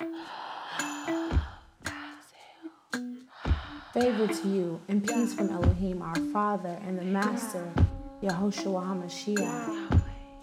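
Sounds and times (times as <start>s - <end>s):
deep inhaled breath: 0.0s - 4.4s
speech: 3.9s - 9.9s.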